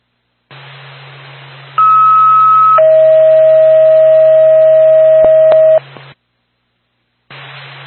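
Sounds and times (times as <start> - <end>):
hissy radio channel: 0.5 - 2.8, 7.3 - 7.8
loud steady radio alert tones: 1.8 - 5.8.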